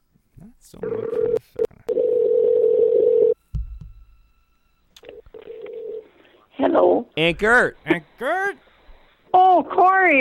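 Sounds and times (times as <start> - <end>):
speech: 0.6 - 1.6, 6.8 - 8.7, 9.3 - 10.1
telephone ringback tone: 0.8 - 3.4, 5.0 - 6.2.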